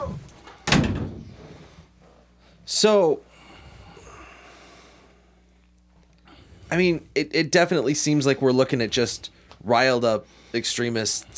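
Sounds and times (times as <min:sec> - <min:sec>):
door shutting with a firm thud: 0:00.0 - 0:01.6
speech: 0:02.7 - 0:03.3, 0:06.7 - 0:11.3.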